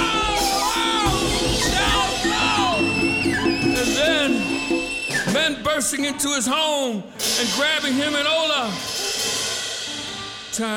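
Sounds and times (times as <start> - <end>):
many voices screaming, yelling and shouting: 0.0 - 5.3
speech: 5.8 - 9.0, 10.6 - 10.7.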